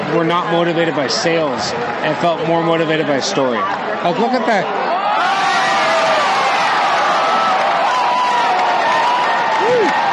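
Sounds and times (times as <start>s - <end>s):
baseball stadium crowd cheering: 0.0s - 10.1s
speech: 0.1s - 4.9s
crowd members whooping: 4.9s - 10.1s.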